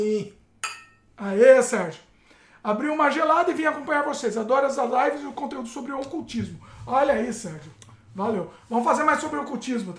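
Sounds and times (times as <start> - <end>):
speech: 0.0 - 0.4, 1.2 - 9.9
glasses clinking in a toast: 0.6 - 1.1.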